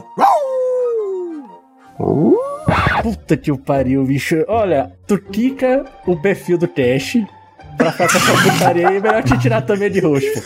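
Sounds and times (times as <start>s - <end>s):
cartoon dog loud strained bark-like yelp: 0.0s - 1.5s
cartoon dog long wavering howl: 0.0s - 3.0s
speech: 2.0s - 2.4s, 3.0s - 10.4s
laughter: 7.8s - 10.4s.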